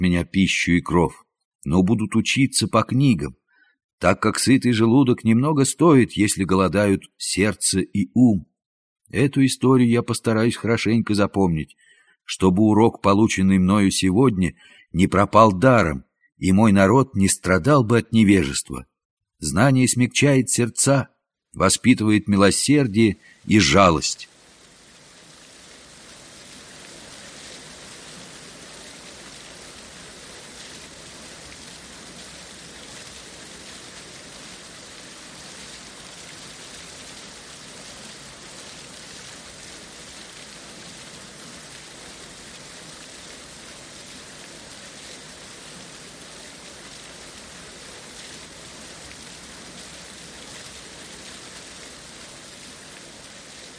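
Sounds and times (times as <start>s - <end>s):
speech: 0.0s - 3.4s, 4.0s - 8.5s, 9.1s - 24.4s
steady rain: 22.5s - 53.7s.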